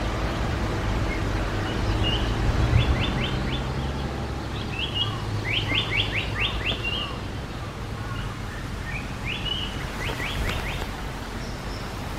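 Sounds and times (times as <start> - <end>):
Japanese paradise flycatcher singing: 0.0 - 12.1.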